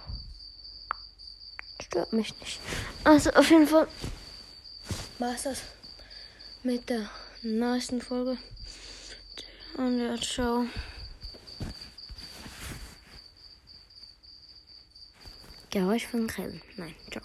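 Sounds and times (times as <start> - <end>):
cricket chirping: 0.0 - 17.2
speech: 1.8 - 4.2, 5.2 - 5.8, 6.6 - 8.9, 9.8 - 10.9, 15.7 - 17.2.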